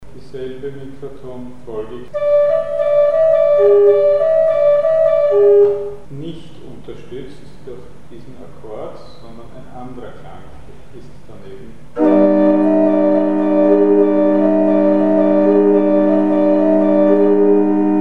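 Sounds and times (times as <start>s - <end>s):
chord: 2.1s - 6.0s, 12.0s - 17.9s
microtonal note sequence: 2.1s - 6.1s, 12.0s - 17.9s.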